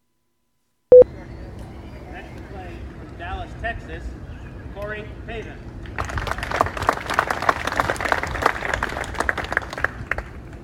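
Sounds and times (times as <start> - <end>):
speech: 3.6 - 6.4
outdoor golf crowd applauding at the first tee: 5.9 - 10.6.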